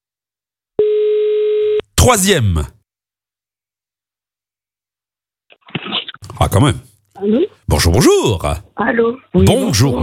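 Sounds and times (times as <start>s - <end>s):
telephone ringback tone on an outgoing call: 0.8s - 1.8s
speech: 2.0s - 2.8s, 6.6s - 10.0s.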